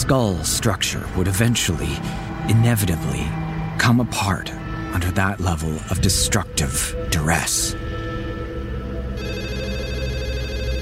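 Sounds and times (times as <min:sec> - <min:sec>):
speech: 0:00.1 - 0:08.0
landline telephone ringing with a bright electronic trill: 0:09.2 - 0:10.8.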